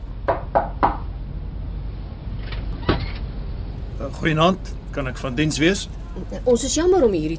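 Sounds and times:
low rumble: 0:00.0 - 0:07.3
firm knocking on a door: 0:00.3 - 0:01.1
speech: 0:04.0 - 0:07.3.

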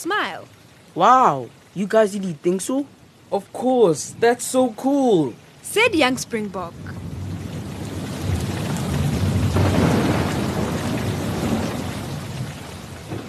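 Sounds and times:
speech: 0:00.0 - 0:07.2
dense hissing rain pouring down heavily: 0:00.0 - 0:13.2
thunderstorm rumbling low: 0:05.7 - 0:13.2.

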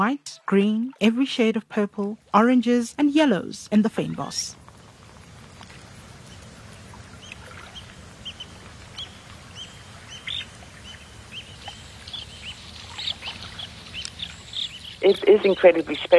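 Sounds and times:
speech: 0:00.0 - 0:04.6, 0:15.0 - 0:16.1
open water: 0:00.0 - 0:16.1
low rumble of wind: 0:00.8 - 0:16.1
birds chirping and calling at a coastal lagoon in South Africa: 0:07.2 - 0:16.0.

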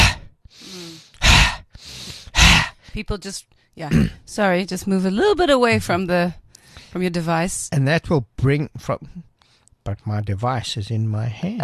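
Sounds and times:
forced breathing of a fire breath exercise: 0:00.0 - 0:03.0
speech: 0:03.0 - 0:11.6.

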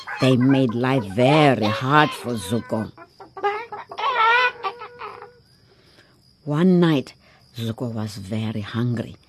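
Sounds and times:
chickens screeching and cackling: 0:00.0 - 0:05.4
speech: 0:00.1 - 0:03.0, 0:06.4 - 0:09.2.

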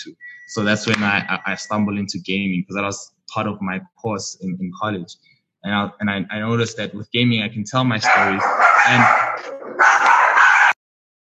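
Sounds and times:
speech: 0:00.0 - 0:09.6
dog barking: 0:08.0 - 0:10.8.

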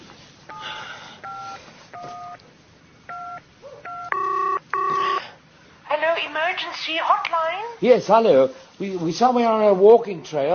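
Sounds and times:
telephone keypad tones dialing an emergency hotline: 0:00.5 - 0:02.4, 0:03.1 - 0:05.2
speech: 0:06.6 - 0:10.5.

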